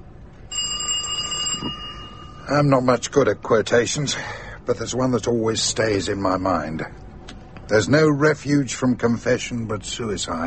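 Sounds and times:
doorbell ringing with a bright metallic tone: 0.5 - 2.6
speech: 2.5 - 7.0, 7.7 - 10.4.

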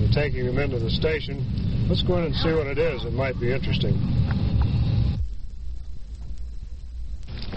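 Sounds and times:
rushing noise: 0.0 - 5.4
police car engine rumbling, pulling into the yard: 0.0 - 7.5
speech: 0.2 - 4.6.

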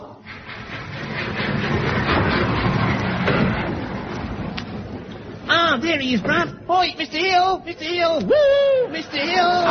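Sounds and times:
train rumble and hiss: 0.1 - 5.9
train pulling into station squealing: 0.2 - 5.3
speech: 6.0 - 9.6.

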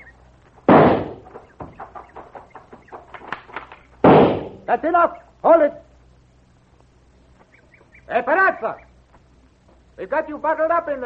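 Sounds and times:
faint irregular cracks and knocks: 0.4 - 4.5
gunshots fired at a tunnel: 0.7 - 1.4, 4.0 - 4.7
speech: 4.7 - 5.8, 8.1 - 8.9, 10.0 - 11.0.

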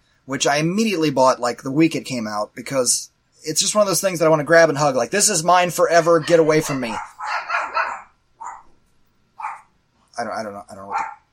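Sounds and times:
speech: 0.3 - 7.2, 10.2 - 11.2
dogs barking sharply: 6.1 - 8.8, 9.4 - 9.8, 10.8 - 11.3.

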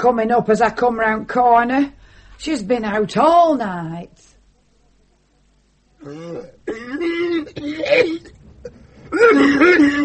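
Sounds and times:
speech: 0.0 - 4.3, 6.0 - 10.0
woman coughing: 6.1 - 8.4, 9.1 - 10.0.

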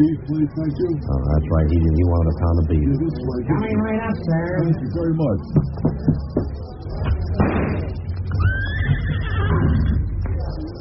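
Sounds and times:
speech: 0.0 - 7.0
low rumbling noise: 0.0 - 10.8
horse neighing: 8.4 - 9.9.

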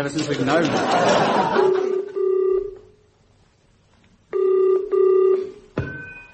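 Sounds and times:
speech: 0.0 - 1.8
laughter: 0.4 - 2.1
telephone ringback tone through the handset: 1.6 - 2.8, 4.3 - 6.3.

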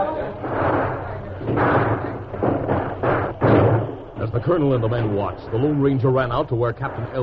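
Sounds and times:
heavier bang of wooden fort gates: 0.0 - 5.2
speech: 4.4 - 7.2.

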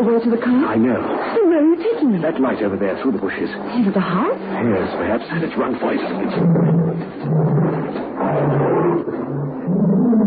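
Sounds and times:
speech: 0.0 - 10.2
pet tiger roaring: 6.1 - 10.2.

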